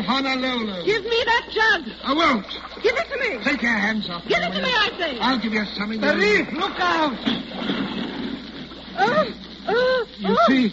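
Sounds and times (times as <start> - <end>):
speech: 0.1 - 8.0, 9.0 - 10.7
water splashing and churning around a small boat: 1.2 - 9.9
small boat propeller hitting a reef: 7.2 - 8.8.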